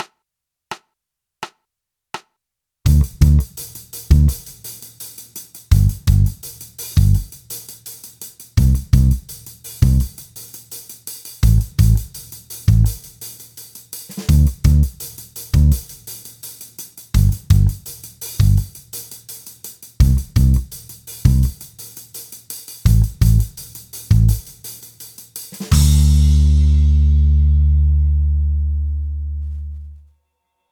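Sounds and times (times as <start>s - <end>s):
drums: 0.0s - 1.6s, 2.2s - 28.6s
bass guitar: 2.9s - 3.5s, 4.1s - 4.4s, 5.7s - 6.4s, 7.0s - 7.3s, 8.6s - 9.2s, 9.8s - 10.1s, 11.4s - 12.1s, 12.7s - 13.0s, 14.3s - 15.0s, 15.6s - 15.8s, 17.2s - 17.8s, 18.4s - 18.7s, 20.0s - 20.7s, 21.3s - 21.6s, 22.9s - 23.5s, 24.1s - 24.4s, 25.7s - 30.1s.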